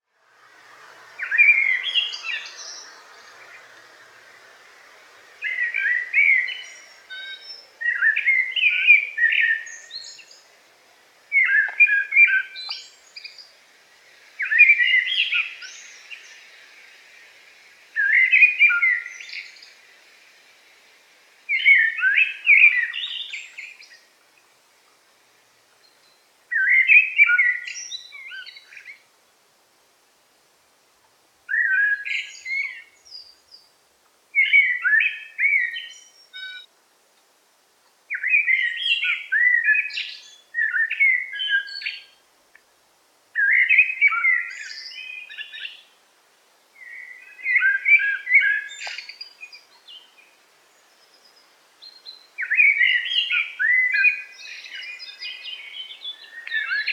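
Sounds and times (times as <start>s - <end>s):
blackbird singing in a forest: 1.0s - 10.5s, 11.3s - 13.5s, 14.4s - 16.7s, 18.0s - 19.8s, 21.5s - 24.0s, 25.8s - 29.0s, 31.5s - 33.7s, 34.4s - 36.7s, 38.1s - 42.2s, 43.4s - 45.9s, 46.8s - 56.9s.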